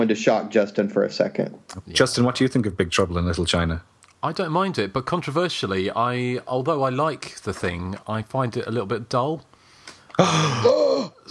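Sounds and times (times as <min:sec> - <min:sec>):
speech: 0:00.0 - 0:09.5, 0:10.2 - 0:11.2
several people gasping in surprise: 0:09.6 - 0:11.1.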